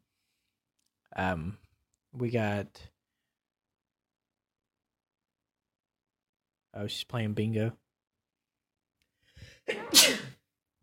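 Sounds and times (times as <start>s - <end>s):
speech: 1.2s - 2.9s, 6.8s - 7.8s, 9.7s - 10.2s
person sneezing: 9.6s - 10.4s.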